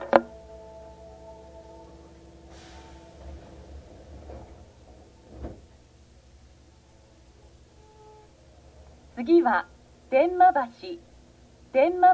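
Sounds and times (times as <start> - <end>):
train sliding doors closing: 0.0 - 9.1
steady droning train carriage hum: 0.0 - 12.1
brief hiss of air from train doors: 2.4 - 4.9
softer knocks: 3.2 - 5.8
speech: 9.2 - 11.1, 11.7 - 12.1.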